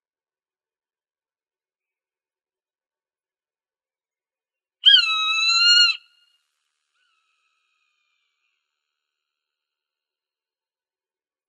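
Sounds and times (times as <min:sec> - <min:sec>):
Swainson's hawk whistled scream in Arizona, United States: 0:04.8 - 0:06.2.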